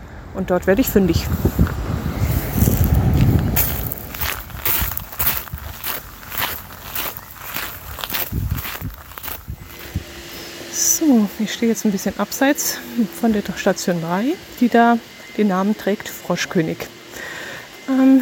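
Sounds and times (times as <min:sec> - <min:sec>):
speech: 0:00.4 - 0:01.8, 0:11.4 - 0:17.0
footsteps walking uphill on a stone-paved street in Marburg's old town: 0:02.4 - 0:10.1.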